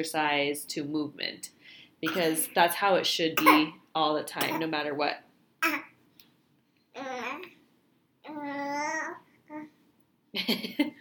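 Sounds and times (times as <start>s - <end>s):
speech: 0.0s - 5.9s, 10.3s - 10.9s
baby babbling while being held: 5.6s - 5.9s, 6.9s - 7.6s, 8.2s - 9.8s.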